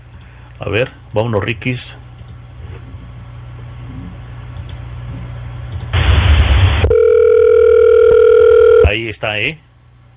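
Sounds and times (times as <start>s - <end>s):
speech: 0.6s - 1.9s, 9.4s - 9.7s
burst of broadband static: 5.9s - 9.5s
telephone dial tone while placing a call: 6.9s - 8.9s.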